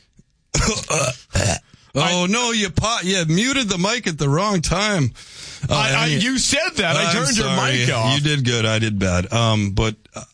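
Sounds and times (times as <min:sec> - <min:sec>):
loud raspy guttural belch: 0:00.6 - 0:01.7
speech: 0:00.7 - 0:10.3.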